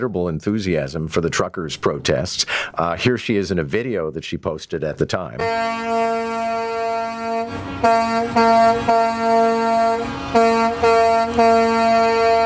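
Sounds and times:
speech: 0.0s - 6.3s, 7.5s - 10.5s, 11.4s - 12.1s
truck air horn blaring: 5.4s - 12.4s.

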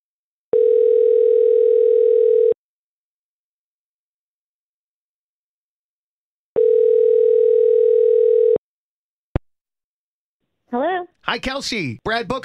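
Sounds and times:
telephone ringback tone as a radio station places a call: 0.5s - 2.6s, 6.6s - 8.6s
speech: 10.7s - 12.4s.

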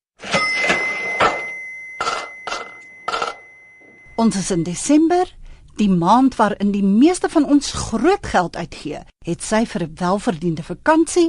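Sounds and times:
cash register sound effect with mechanical clatter and bell: 0.2s - 4.2s
quick chiming strikes: 0.2s - 4.4s
speech: 4.2s - 11.2s.

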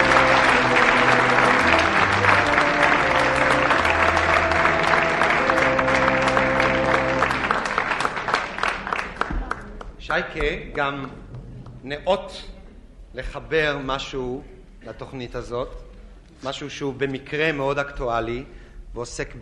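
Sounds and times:
music playing: 0.0s - 8.4s
audience applause as an entertainer comes on stage: 0.0s - 11.2s
speech: 10.2s - 11.2s, 11.8s - 12.5s, 13.2s - 15.8s, 16.4s - 19.4s.

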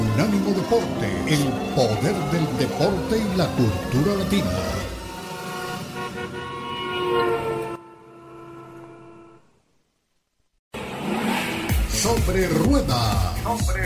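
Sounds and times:
racing car engines roaring with harmonic whine: 0.0s - 7.8s, 10.8s - 13.0s
speech: 0.6s - 4.9s, 12.3s - 13.8s.

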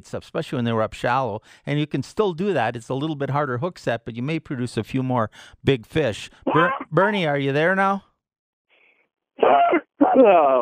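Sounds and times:
speech: 0.0s - 8.1s, 9.4s - 10.6s
man clearing throat: 6.5s - 7.0s, 9.4s - 10.6s.

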